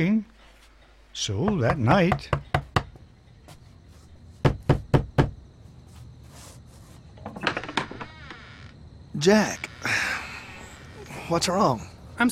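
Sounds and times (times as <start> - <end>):
speech: 1.2 - 2.5, 9.2 - 9.7, 11.3 - 12.3
firm raps on a door: 1.4 - 3.0, 4.4 - 5.4
softer knocks or shuffling: 3.4 - 4.4, 5.6 - 7.4.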